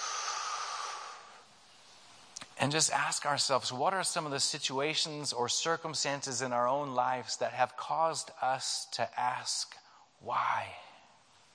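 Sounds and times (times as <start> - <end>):
deep breath: 0.0 - 1.5
speech: 2.6 - 10.8.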